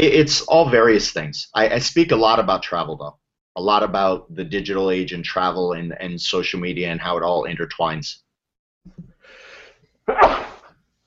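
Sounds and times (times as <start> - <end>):
speech: 0.0 - 8.2, 10.1 - 10.5
person sneezing: 10.1 - 10.7.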